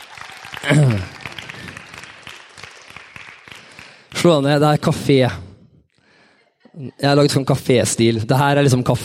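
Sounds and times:
audience clapping: 0.0s - 4.6s
speech: 0.6s - 1.1s, 4.2s - 5.4s, 6.8s - 9.0s.

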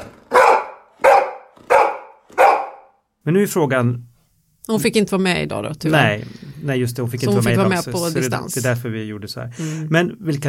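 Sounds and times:
happy dog barking: 0.3s - 3.0s
speech: 3.2s - 4.1s, 4.7s - 10.4s.

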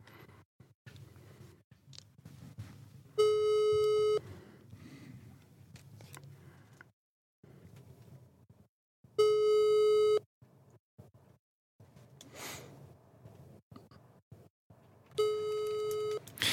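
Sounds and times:
telephone busy signal after calling someone: 3.2s - 4.2s, 9.2s - 10.2s, 15.2s - 16.2s.

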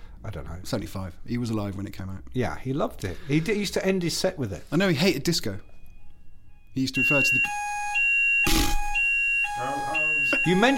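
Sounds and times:
speech: 0.4s - 5.7s, 6.8s - 7.8s, 9.6s - 10.7s
fire alarm electronic tone: 5.6s - 10.7s.

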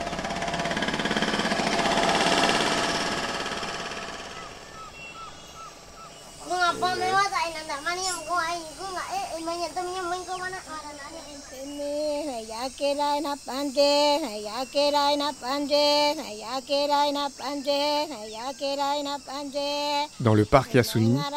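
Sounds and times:
helicopter roar over the rainforest: 0.0s - 12.5s
loud wavering calls: 0.0s - 21.3s
speech: 12.7s - 21.3s.

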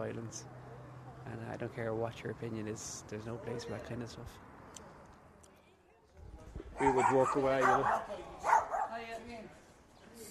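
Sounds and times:
speech: 0.0s - 0.6s, 1.3s - 4.5s, 6.8s - 9.6s
dog barking: 6.8s - 9.0s.

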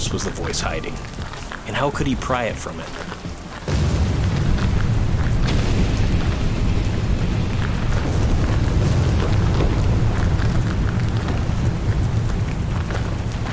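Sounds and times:
crackling debris-like noise: 0.0s - 13.5s
speech: 0.1s - 3.8s
huge booming explosion with low rumble and roar: 3.7s - 13.5s.

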